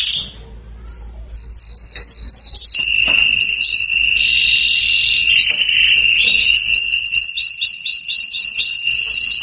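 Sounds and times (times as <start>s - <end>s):
Belgian canary song: 0.0s - 9.4s
speech: 3.4s - 3.8s.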